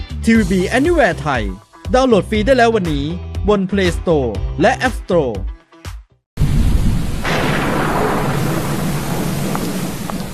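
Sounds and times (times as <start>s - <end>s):
speech: 0.2s - 5.5s
loud rumble of thunder: 6.4s - 10.3s
steady heavy rain hissing: 6.4s - 10.3s.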